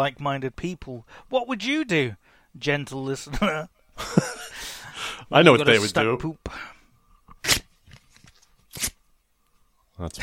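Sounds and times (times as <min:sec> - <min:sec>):
speech: 0:00.0 - 0:04.4, 0:05.3 - 0:06.7, 0:10.0 - 0:10.2
large thick laminated cards handled, rustling and scraping: 0:07.4 - 0:09.0.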